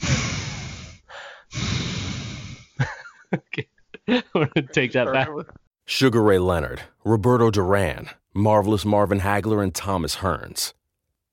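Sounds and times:
person mimicking heavy panting into a microphone: 0.0s - 2.8s
laughter: 2.8s - 5.6s
speech: 3.3s - 10.8s.

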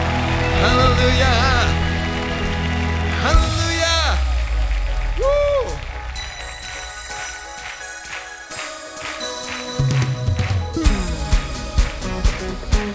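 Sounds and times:
audience clapping and cheering: 0.0s - 12.9s
music with sharp beats: 3.4s - 12.9s.

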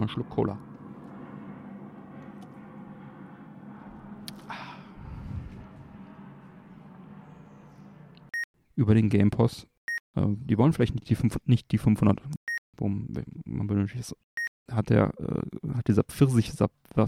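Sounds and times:
speech: 0.0s - 0.7s, 8.8s - 17.0s
airplane flying overhead heard from a balcony: 0.0s - 8.3s.

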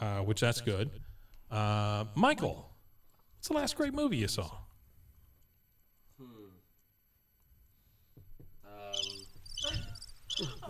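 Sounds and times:
speech: 0.2s - 2.7s, 3.4s - 4.6s
crickets chirping: 8.8s - 10.6s.

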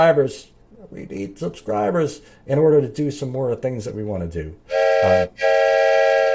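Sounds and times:
speech: 0.0s - 6.2s
train-style multi-tone whistle: 4.7s - 6.3s.

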